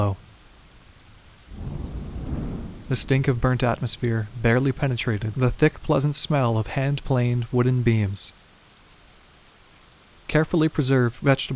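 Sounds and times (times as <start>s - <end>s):
speech: 0.0s - 0.2s, 2.9s - 8.4s, 10.3s - 11.5s
heavy rain pounding on a roof in a thunderstorm: 0.0s - 11.5s
deep rolling thunder rumble: 1.4s - 4.8s.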